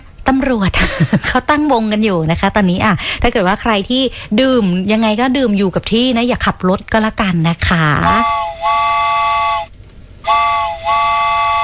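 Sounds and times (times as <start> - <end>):
speech: 0.3 - 9.0
loud steam train whistle blasts: 8.0 - 11.6.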